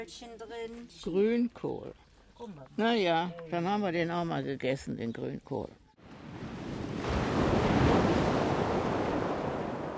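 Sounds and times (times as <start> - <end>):
speech: 0.0 - 5.8
sea waves at high tide surging and washing: 6.0 - 9.9.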